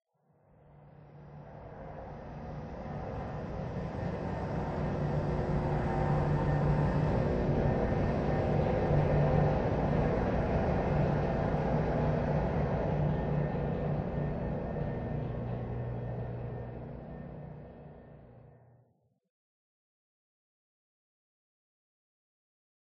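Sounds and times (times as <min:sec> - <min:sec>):
interior metal drone: 0:00.8 - 0:18.7.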